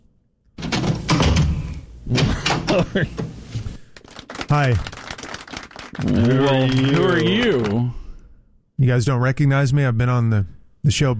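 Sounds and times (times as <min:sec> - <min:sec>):
knocking and rattling: 0:00.6 - 0:03.4
door opening: 0:00.6 - 0:03.7
speech: 0:02.1 - 0:03.3, 0:04.5 - 0:04.9, 0:06.0 - 0:08.0, 0:08.8 - 0:11.1.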